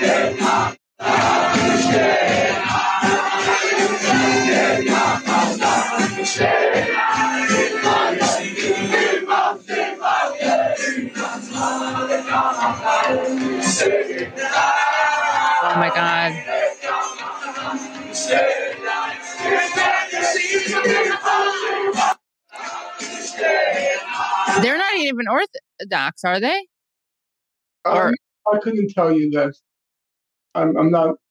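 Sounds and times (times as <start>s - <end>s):
large crowd cheering and shouting at a fire set on the Al-Aqsa Mosque: 0.0s - 25.0s, 27.9s - 28.2s
speech: 15.7s - 16.6s, 25.2s - 26.7s, 27.8s - 29.7s, 30.5s - 31.2s.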